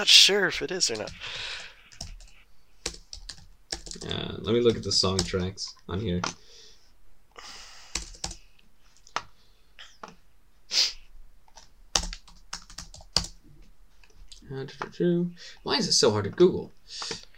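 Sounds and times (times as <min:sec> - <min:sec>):
speech: 0:00.0 - 0:01.6, 0:04.0 - 0:06.4, 0:14.5 - 0:17.3
keystrokes on a computer keyboard: 0:00.9 - 0:05.4, 0:07.9 - 0:08.4, 0:11.5 - 0:13.4.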